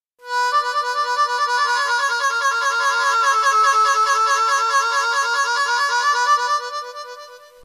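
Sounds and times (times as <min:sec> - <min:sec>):
harmonica effects: 0:00.2 - 0:07.6.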